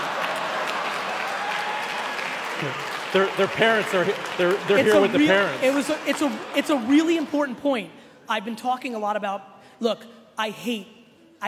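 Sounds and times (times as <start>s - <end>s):
lukewarm audience applause in a room: 0.0s - 7.4s
speech: 2.6s - 11.4s.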